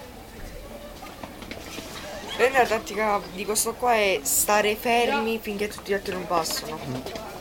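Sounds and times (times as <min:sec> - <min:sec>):
faint chatter and murmuring voices: 0:00.0 - 0:07.4
several children running footsteps on a floor chessboard: 0:00.0 - 0:07.4
speech: 0:02.4 - 0:07.3.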